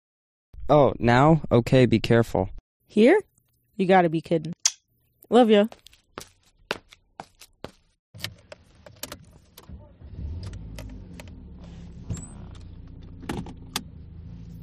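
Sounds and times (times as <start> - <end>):
speech: 0.7 - 4.6, 5.3 - 6.3
low car engine rumble: 8.2 - 14.6.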